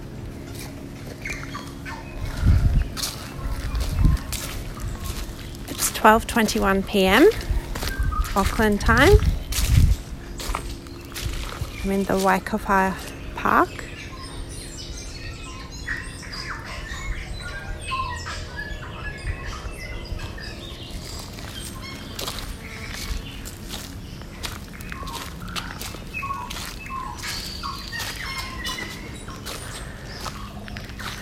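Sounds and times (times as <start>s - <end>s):
birds chirping and calling in Waikawa Park in Auckland: 0.0s - 31.1s
low ambient rumble: 0.0s - 31.1s
footsteps: 2.2s - 13.2s, 20.9s - 31.1s
speech: 6.0s - 7.5s, 8.4s - 9.3s, 11.8s - 13.8s.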